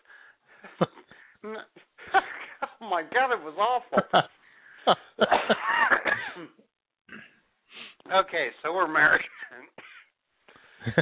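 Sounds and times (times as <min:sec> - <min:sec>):
speech: 0:00.6 - 0:01.9, 0:02.8 - 0:05.7, 0:08.1 - 0:09.4, 0:10.8 - 0:11.0
person coughing: 0:05.2 - 0:07.3, 0:09.8 - 0:10.1
person clearing throat: 0:05.3 - 0:07.4, 0:09.8 - 0:10.1.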